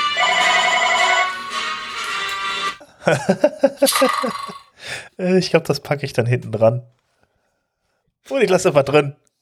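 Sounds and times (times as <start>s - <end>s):
telephone ringing with a bright melodic electronic ringtone: 0.2s - 2.1s, 3.8s - 4.7s
speech: 3.1s - 7.0s, 8.3s - 9.3s.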